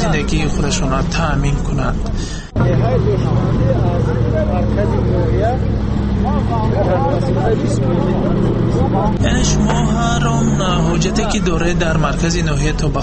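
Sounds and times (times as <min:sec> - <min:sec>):
heavy cargo truck engine droning, heard from inside the cab: 0:00.0 - 0:13.0
speech: 0:00.2 - 0:13.0.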